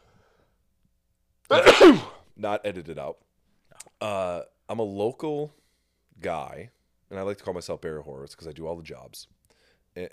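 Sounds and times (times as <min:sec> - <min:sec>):
sharp breathy sneeze: 0:01.5 - 0:02.2
speech: 0:01.5 - 0:03.3, 0:04.0 - 0:05.6, 0:06.2 - 0:09.4, 0:10.0 - 0:10.1.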